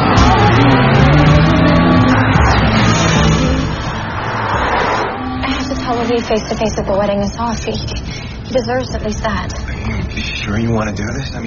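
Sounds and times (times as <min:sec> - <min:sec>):
vehicles racing by: 0:00.0 - 0:08.6
car engines roaring as paparazzi chase a car: 0:00.0 - 0:11.4
speech: 0:06.2 - 0:11.4.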